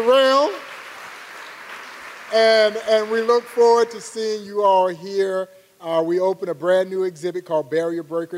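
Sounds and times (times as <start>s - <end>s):
speech: 0.0s - 0.7s, 2.3s - 8.3s
audience applause for a band: 0.0s - 3.6s.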